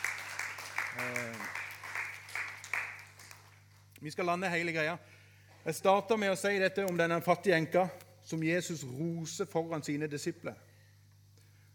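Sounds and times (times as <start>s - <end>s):
audience applauding in a room: 0.0s - 3.8s
steady low electrical hum: 0.0s - 11.7s
speech: 4.0s - 10.7s.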